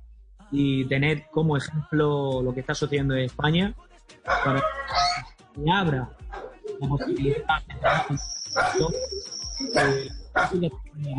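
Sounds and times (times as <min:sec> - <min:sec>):
speech: 0:00.5 - 0:05.0, 0:05.6 - 0:06.2, 0:06.8 - 0:11.1
dog barking: 0:04.3 - 0:05.3, 0:06.3 - 0:10.6
thin steady high-pitched tone: 0:06.7 - 0:11.1.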